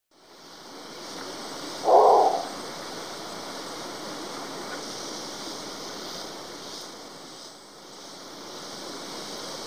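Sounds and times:
steady background hiss: 0.1 - 9.6
long-wattled umbrellabird booming note: 1.8 - 2.5.

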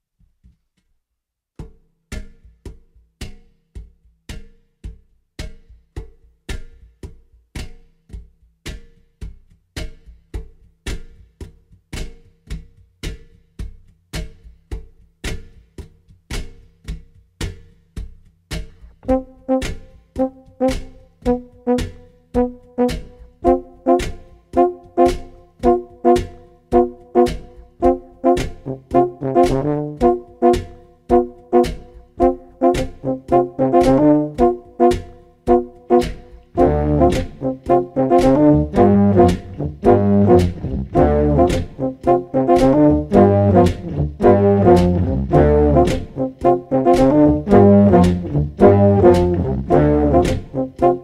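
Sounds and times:
euphonium: 19.0 - 51.0.

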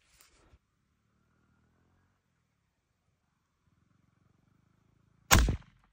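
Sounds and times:
AK-47 gunfire: 5.3 - 5.6.

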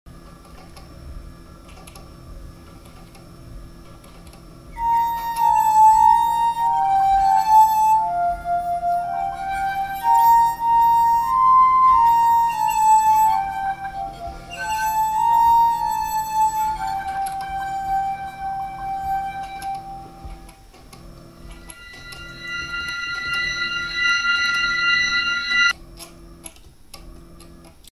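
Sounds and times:
glass harmonica: 4.8 - 20.6, 21.5 - 25.8.

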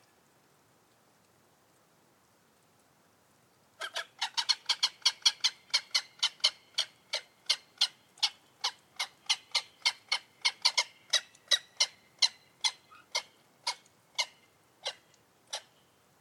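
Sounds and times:
gyrfalcon calling: 3.8 - 15.7.

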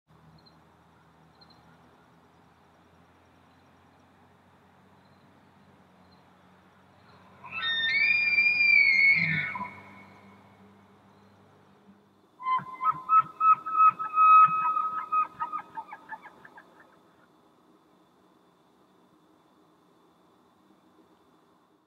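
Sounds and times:
elk call: 7.4 - 10.3, 12.4 - 16.9.

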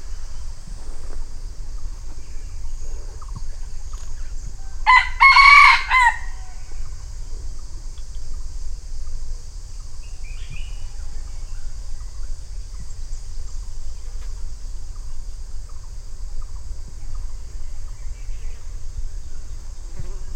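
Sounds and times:
low background rumble: 0.0 - 20.3
red junglefowl crowing: 4.6 - 6.9.

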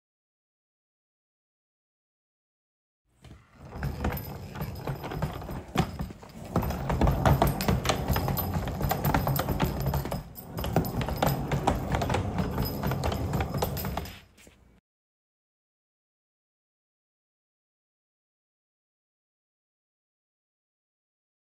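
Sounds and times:
luggage wheels rolling: 3.2 - 14.4.

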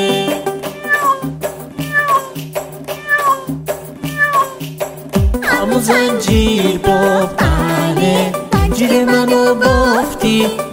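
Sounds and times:
rhythmic musical accompaniment: 0.0 - 10.7
voice imitating a cat meowing within a sung children's rhyme: 0.6 - 4.8
speech: 5.8 - 10.7.

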